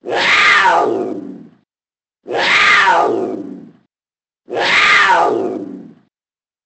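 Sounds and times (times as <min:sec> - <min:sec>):
cat meowing: 0:00.1 - 0:00.9, 0:02.3 - 0:03.1, 0:04.6 - 0:05.4.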